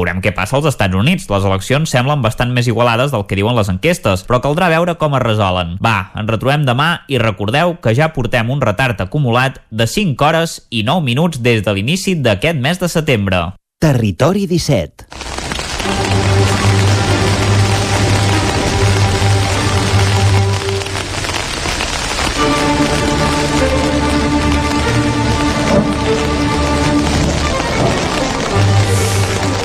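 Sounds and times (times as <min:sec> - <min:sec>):
speech: 0:00.1 - 0:15.3, 0:15.9 - 0:16.6
heavy rain pouring down: 0:15.1 - 0:29.6
sustained musical tones: 0:15.6 - 0:29.6.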